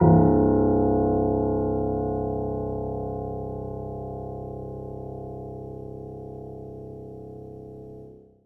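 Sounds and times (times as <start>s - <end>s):
soft C1 note on a grand piano: 0.0s - 5.6s.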